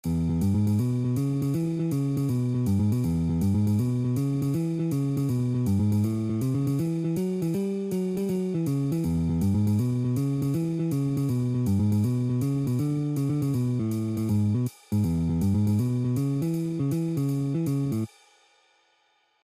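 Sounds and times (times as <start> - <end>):
boogie in E: 0.1 - 18.1.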